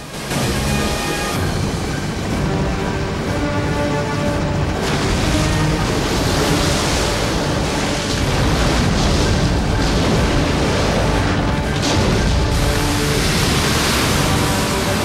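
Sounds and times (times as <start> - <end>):
low droning engine hum: 0.0 - 15.0
water cascading from helicopter tanks onto a lava flow: 4.8 - 15.0.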